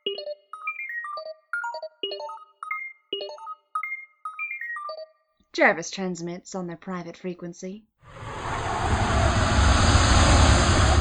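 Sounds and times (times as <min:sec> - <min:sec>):
speech: 0:05.6 - 0:08.2
jet-like roar of a prototype flying suit taking off inside a workshop: 0:08.1 - 0:10.9.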